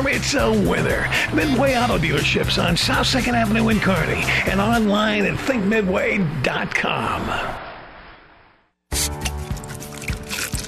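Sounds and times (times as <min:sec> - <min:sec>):
speech: 0:00.0 - 0:07.6
pils beer pouring with a soft fizzing hiss: 0:09.0 - 0:10.6.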